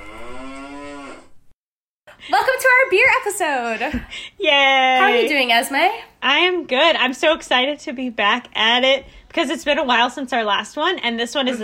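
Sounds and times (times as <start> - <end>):
cow mooing: 0.0 - 1.4
speech: 2.3 - 11.6.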